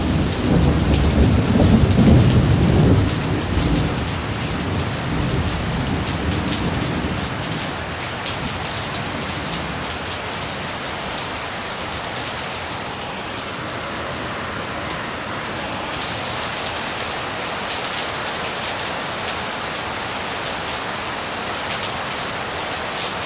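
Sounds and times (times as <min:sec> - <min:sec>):
deep thunder rolling in a storm in Georgetown Malaysia: 0:00.0 - 0:10.1
heavy rain pouring in a raging storm in Georgetown Malaysia: 0:00.0 - 0:23.2.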